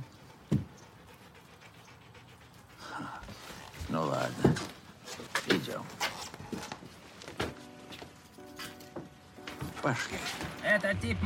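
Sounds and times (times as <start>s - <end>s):
dog lying at someone's feet panting: 0.0s - 5.7s
speech: 9.9s - 11.2s.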